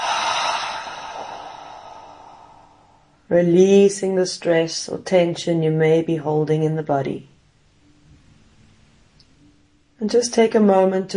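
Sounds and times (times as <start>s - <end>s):
deep breath during a guided mindfulness exercise: 0.0s - 3.2s
speech: 3.3s - 7.3s, 10.0s - 11.1s.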